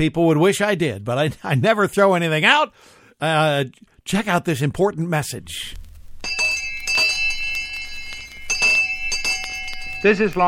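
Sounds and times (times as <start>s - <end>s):
speech: 0.0s - 6.5s, 10.0s - 10.4s
old school bell ringing: 6.3s - 10.4s.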